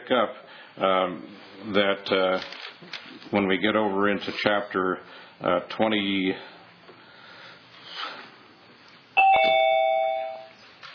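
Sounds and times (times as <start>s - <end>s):
speech: 0.1s - 6.6s
doorbell chiming: 9.2s - 10.6s.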